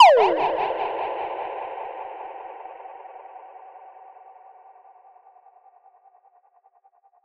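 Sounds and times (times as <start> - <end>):
sound effect shot: 0.0 - 1.6.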